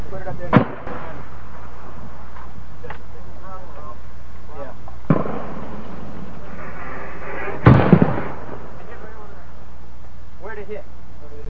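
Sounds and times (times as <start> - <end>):
RPG grenade explosion: 0.5 - 2.3, 5.1 - 9.3.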